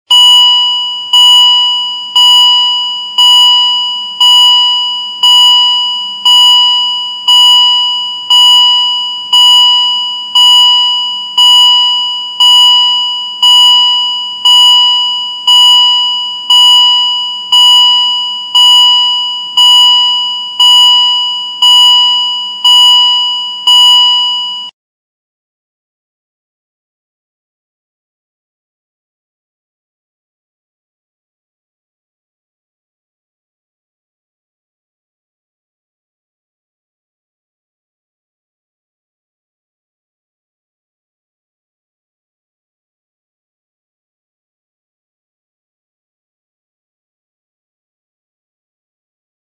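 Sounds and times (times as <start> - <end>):
door open alarm: 0.1 - 24.7.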